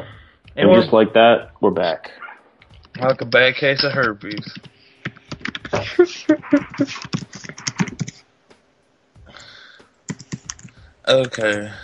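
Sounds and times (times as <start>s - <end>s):
speech: 0.0s - 2.2s, 3.0s - 4.7s, 5.7s - 7.6s, 11.1s - 11.8s
typing on a computer keyboard: 6.9s - 8.2s, 10.1s - 10.7s.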